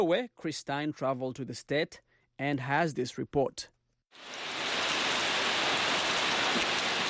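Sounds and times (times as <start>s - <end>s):
speech: 0.0s - 4.6s
steady rain falling on a ruined church: 4.2s - 7.0s.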